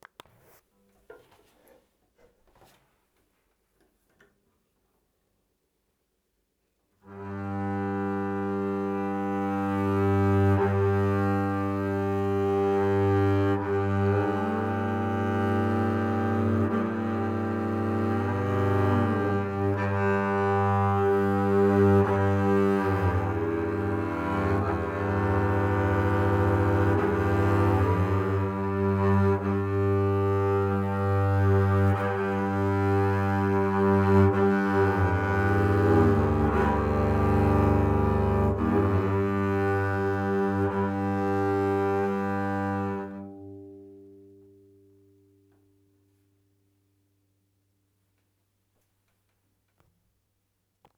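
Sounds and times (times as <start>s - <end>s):
double bass: 7.2s - 44.4s.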